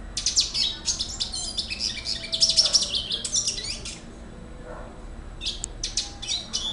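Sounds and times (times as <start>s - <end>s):
Red Siskin song of high twittering notes: 0.2s - 4.1s, 5.4s - 6.7s.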